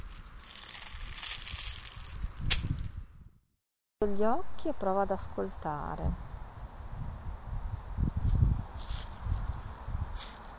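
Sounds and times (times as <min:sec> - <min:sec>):
footsteps crunching dry leaves: 0:00.0 - 0:03.0, 0:08.2 - 0:10.5
speech: 0:04.0 - 0:06.3.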